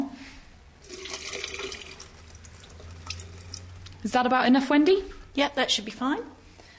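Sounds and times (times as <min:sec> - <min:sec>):
water pouring down a sink drain: 0:00.8 - 0:04.0
speech: 0:04.0 - 0:06.4.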